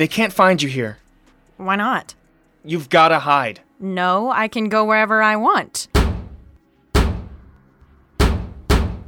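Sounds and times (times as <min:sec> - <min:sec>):
speech: 0:00.0 - 0:01.0, 0:01.6 - 0:06.0
heavy booming fist pounding on a door: 0:06.0 - 0:07.4, 0:08.2 - 0:09.0.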